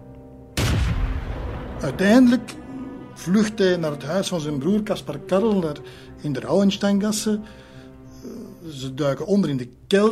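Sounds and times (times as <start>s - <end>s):
heavy blast of cannon fire: 0.6s - 2.4s
speech: 1.8s - 2.6s, 3.2s - 7.6s, 8.2s - 10.1s.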